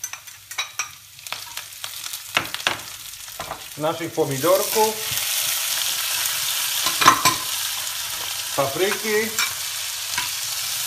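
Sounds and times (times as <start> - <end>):
golden onion frying and sizzling in a pan: 0.0 - 10.8
speech: 3.8 - 5.3, 8.6 - 9.5.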